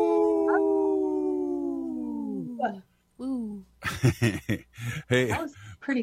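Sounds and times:
several people howling like wolves in three-part harmony: 0.0s - 2.6s
speech: 2.6s - 6.0s
laughter: 3.8s - 5.6s.

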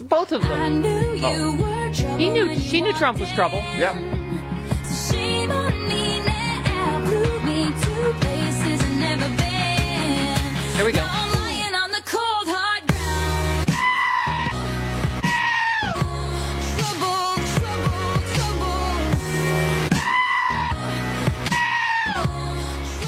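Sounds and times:
thumping pop backing track: 0.0s - 23.0s
speech: 0.1s - 4.1s, 10.8s - 11.2s
goat screaming: 13.8s - 14.5s, 15.2s - 16.0s, 19.9s - 20.8s, 21.5s - 22.3s.

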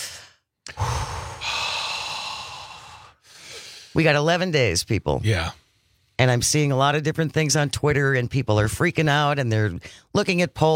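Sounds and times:
group taking a deep collective cleansing breath: 0.0s - 4.0s
speech: 4.0s - 5.6s, 6.2s - 10.7s.

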